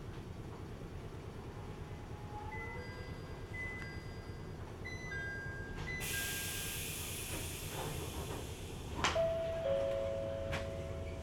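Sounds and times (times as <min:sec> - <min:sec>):
local train rolling along: 0:00.0 - 0:11.2
loud sustained hiss of air: 0:06.0 - 0:09.0.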